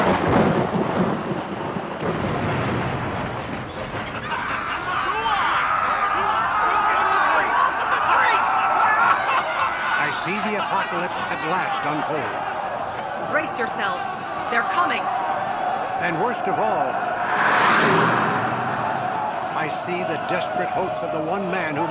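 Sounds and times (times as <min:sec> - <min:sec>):
thunder from a lightning strike: 0:00.0 - 0:04.7, 0:17.2 - 0:20.4
laughter: 0:04.0 - 0:14.7, 0:19.6 - 0:21.8
speech: 0:16.0 - 0:17.0, 0:19.6 - 0:21.8.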